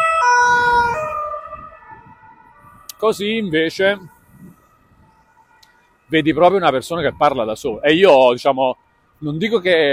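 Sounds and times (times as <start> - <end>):
police siren wailing as the vehicle passes: 0.0 - 5.7
low rumble of road traffic: 0.0 - 9.9
speech: 3.0 - 4.2, 6.1 - 9.9.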